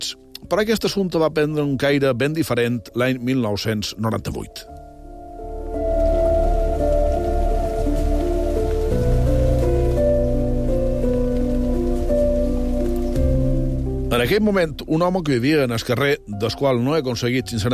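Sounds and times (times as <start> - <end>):
speech: 0.1 - 4.8, 14.2 - 17.7
steady heavy rain: 5.2 - 14.8.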